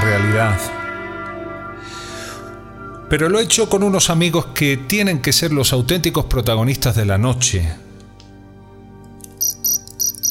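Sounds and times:
speech: 0.4s - 0.8s, 3.1s - 7.8s
crickets chirping in shrill rhythmic bursts: 9.4s - 10.2s.

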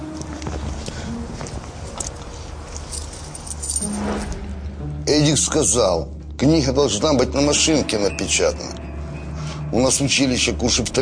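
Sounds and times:
keys jangling while being searched for: 2.0s - 4.0s
speech: 5.1s - 8.8s, 9.7s - 10.9s.

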